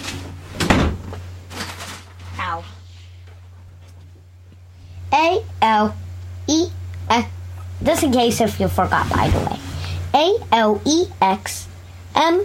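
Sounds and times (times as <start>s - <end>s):
door shutting with a solid thump: 0.0s - 1.2s
low steady hum: 0.0s - 12.4s
lighter knock of a door settling: 0.6s - 1.1s
speech: 2.5s - 2.8s, 5.2s - 9.6s, 10.2s - 12.4s.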